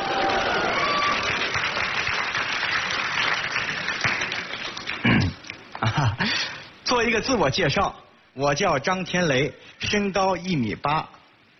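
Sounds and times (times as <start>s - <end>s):
crowd applauding: 0.0s - 5.9s
speech: 7.0s - 11.2s.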